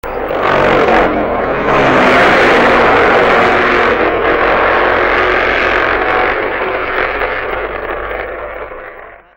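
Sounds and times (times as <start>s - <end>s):
1968 Triumph motorcycle: 0.0s - 9.3s.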